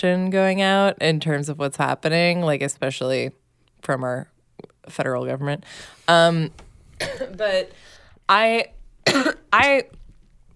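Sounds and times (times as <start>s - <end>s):
speech: 0.0s - 10.0s
person coughing, short dry throaty coughs: 7.0s - 7.4s, 9.0s - 9.5s.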